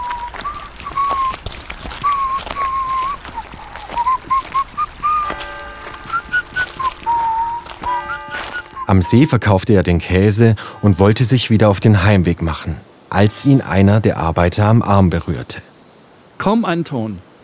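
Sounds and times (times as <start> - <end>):
man whistling a cheerful tune while walking: 0.0 - 9.3
soft ambient background: 5.2 - 17.4
speech: 8.9 - 15.7, 16.4 - 17.3.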